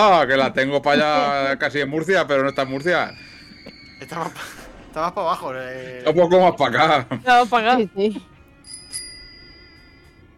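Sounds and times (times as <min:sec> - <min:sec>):
speech: 0:00.0 - 0:03.3, 0:04.0 - 0:08.3
laughter: 0:00.9 - 0:01.5, 0:03.6 - 0:04.7, 0:06.0 - 0:08.2
bicycle bell ringing: 0:08.6 - 0:10.2.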